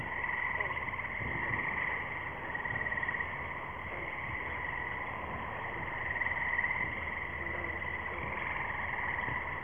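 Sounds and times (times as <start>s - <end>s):
Lithobates clamitans frog: 0.0s - 9.6s.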